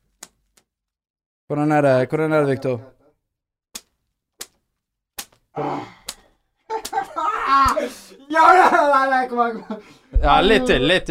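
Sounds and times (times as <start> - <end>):
speech: 1.5 - 3.0, 8.4 - 11.0
sharp hand slaps on a man's back: 5.2 - 5.4, 6.0 - 7.8
laughter: 6.7 - 11.0.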